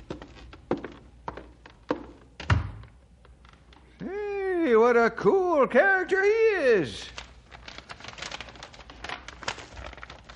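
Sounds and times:
speech: 4.9s - 7.2s
stiff sealed paper packet closed with tape being torn open: 7.1s - 10.3s.

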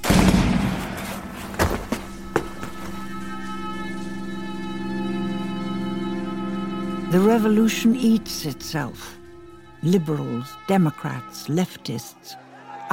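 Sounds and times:
firing squad gunfire from an execution: 0.0s - 1.3s
sustained low droning tone: 2.1s - 10.7s
speech: 7.1s - 9.2s, 9.8s - 12.9s.

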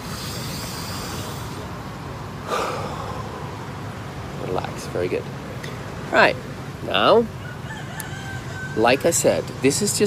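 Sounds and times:
deep breath during a calming tapping exercise: 0.0s - 1.7s, 2.4s - 3.7s
speech: 4.5s - 5.4s, 6.1s - 7.4s, 8.8s - 10.0s.

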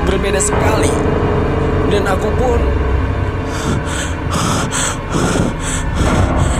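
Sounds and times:
speech: 0.1s - 2.9s, 3.5s - 5.5s
heavy rapid panting breaths: 3.5s - 6.5s.

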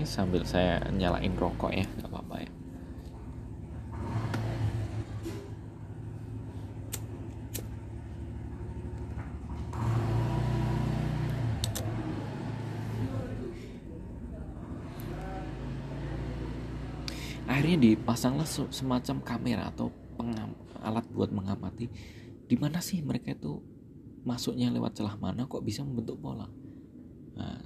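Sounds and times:
speech: 0.0s - 2.6s, 17.7s - 26.6s, 27.4s - 27.6s
motorcycle engine passing by: 3.1s - 19.1s.

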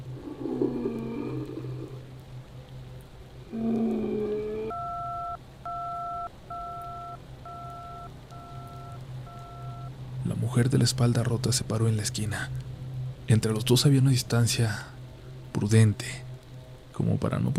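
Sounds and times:
low electrical hum: 0.0s - 17.5s
warbling telephone tone: 4.6s - 9.9s
speech: 10.6s - 12.7s, 13.3s - 14.9s, 15.6s - 16.3s, 17.0s - 17.5s.

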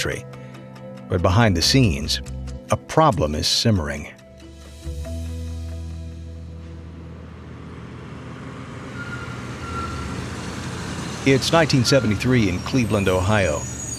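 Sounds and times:
speech: 0.0s - 0.3s, 1.1s - 4.2s, 11.2s - 13.8s
delivery truck engine rumbling arriving at warehouse in Cleveland Ohio: 6.2s - 13.9s.

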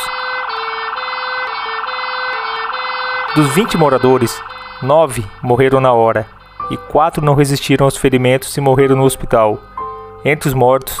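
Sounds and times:
fire brigade siren wailing after an explosion: 0.0s - 7.8s
speech: 3.4s - 10.9s.

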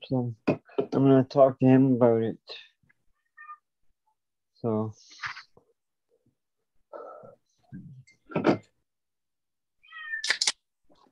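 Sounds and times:
speech: 0.0s - 2.7s, 4.6s - 5.4s
cat meowing: 9.8s - 10.4s.

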